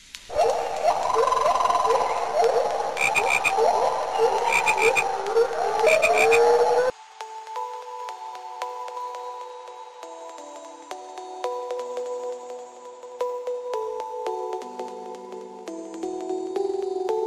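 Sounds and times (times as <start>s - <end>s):
soft sustained tones: 0.0s - 17.2s
dense chorus of frogs croaking: 0.3s - 6.9s.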